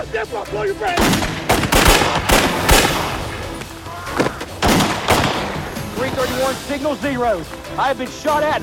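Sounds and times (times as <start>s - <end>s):
speech: 0.1s - 2.7s, 6.0s - 8.6s
gunfire exchanged between a police officer and an armed suspect: 0.8s - 3.6s, 4.2s - 6.4s.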